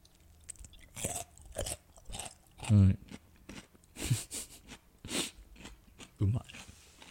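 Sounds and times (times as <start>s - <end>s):
home-made pickled cucumber being bitten and chewed: 0.0s - 4.0s, 5.6s - 7.0s
speech: 2.7s - 3.1s.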